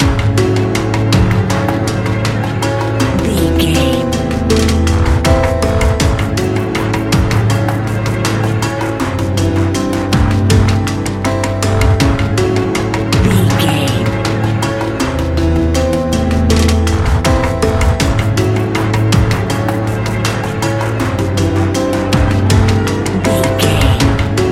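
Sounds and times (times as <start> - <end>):
modern horror music: 0.0 - 24.5.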